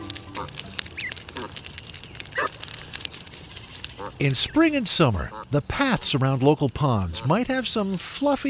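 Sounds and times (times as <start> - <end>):
Canada geese honking: 0.0 - 1.6, 3.9 - 6.2, 7.0 - 7.8
steady outdoor hiss: 0.0 - 8.4
speech: 4.2 - 8.4.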